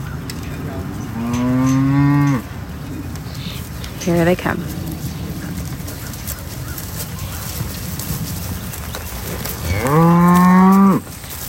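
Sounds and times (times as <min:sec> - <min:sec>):
faint outdoor rustle: 0:00.0 - 0:11.4
cow mooing at pasture gate: 0:00.7 - 0:02.4, 0:09.6 - 0:11.0
speech: 0:04.0 - 0:04.8.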